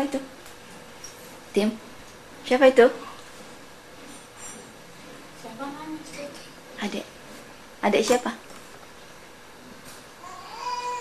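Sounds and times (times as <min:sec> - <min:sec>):
speech: 0:00.0 - 0:00.3, 0:01.6 - 0:01.9, 0:02.5 - 0:03.0, 0:06.8 - 0:07.1, 0:07.8 - 0:08.4
young child crying: 0:10.2 - 0:10.9.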